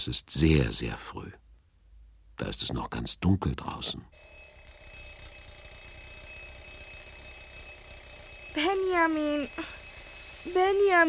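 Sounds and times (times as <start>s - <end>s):
speech: 0.0s - 1.4s, 2.4s - 4.4s, 8.6s - 9.8s, 10.4s - 11.0s
alarm clock ringing: 4.2s - 11.0s.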